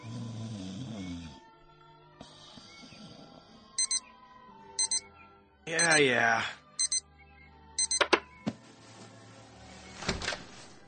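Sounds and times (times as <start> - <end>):
alarm clock snooze alarm beeping: 3.8 - 4.0, 4.8 - 5.0, 5.8 - 6.1, 6.8 - 7.0, 7.8 - 8.1
speech: 5.7 - 6.6
rustling movement: 8.5 - 10.8.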